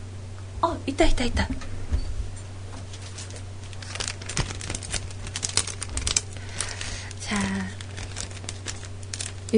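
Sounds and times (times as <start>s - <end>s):
low steady hum: 0.0s - 9.5s
speech: 0.8s - 1.7s
plastic wrap crinkling and rustling while being handled: 2.9s - 9.5s.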